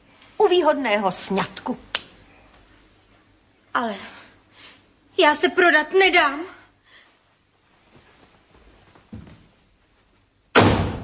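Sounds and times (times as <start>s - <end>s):
speech: 0.5s - 1.9s, 3.8s - 4.2s, 5.2s - 6.6s
faint shuffling: 6.9s - 10.4s
door slamming shut: 10.5s - 11.0s.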